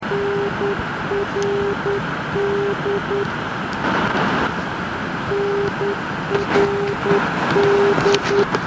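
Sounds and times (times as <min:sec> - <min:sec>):
NDB radio beacon signal at 445 kHz received in Forest: 0:00.0 - 0:04.6, 0:05.2 - 0:08.5.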